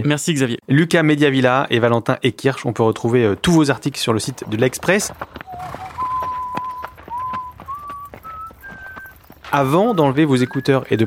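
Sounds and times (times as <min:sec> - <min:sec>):
speech: 0:00.0 - 0:05.8, 0:09.5 - 0:11.0
horse hooves clip-clopping at a trot: 0:03.5 - 0:11.0
person whistling a slow clear tune: 0:05.5 - 0:11.0.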